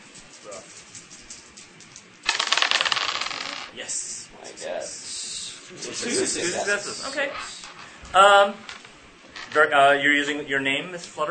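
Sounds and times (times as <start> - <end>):
three dice clattering and rattling across a table: 2.3 - 3.7, 8.5 - 9.7
speech: 3.8 - 5.1, 5.7 - 8.7, 9.5 - 11.2.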